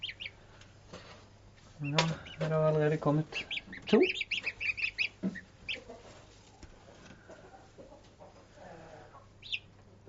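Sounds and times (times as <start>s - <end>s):
newly hatched goslings peeping: 0.0s - 0.4s, 1.8s - 6.3s, 7.3s - 9.8s
speech: 1.8s - 4.3s.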